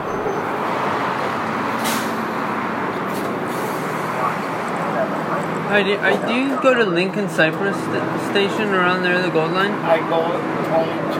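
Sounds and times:
city bus engine idling: 0:00.0 - 0:11.1
city bus air brakes hissing: 0:01.8 - 0:02.4, 0:03.2 - 0:04.1
speech: 0:05.7 - 0:11.1.

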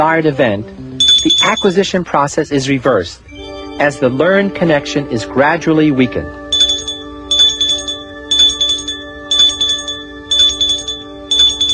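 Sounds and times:
speech: 0:00.0 - 0:06.4
bell ringing: 0:01.0 - 0:01.8, 0:06.5 - 0:11.7.

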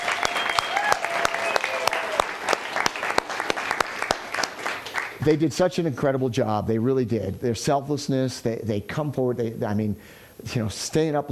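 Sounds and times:
room full of people clapping: 0:00.0 - 0:05.3
faint whistles: 0:00.2 - 0:01.7
speech: 0:05.2 - 0:11.3.

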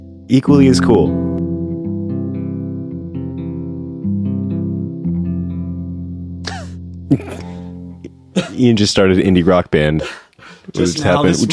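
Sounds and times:
electric guitar strumming chords through a reverb pedal on a large hall setting: 0:00.0 - 0:08.5
speech: 0:00.3 - 0:01.2, 0:07.1 - 0:07.5, 0:08.6 - 0:11.5.

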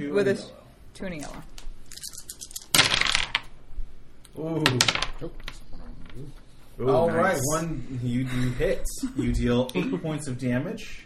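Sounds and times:
speech: 0:00.0 - 0:01.6, 0:04.4 - 0:05.5, 0:06.2 - 0:11.0
dice rolling on a hard table surface: 0:01.5 - 0:03.5, 0:04.6 - 0:06.4.

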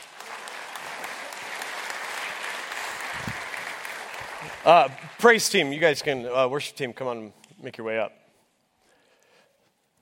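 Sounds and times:
church audience applauding: 0:00.0 - 0:06.1
speech: 0:04.6 - 0:08.2.

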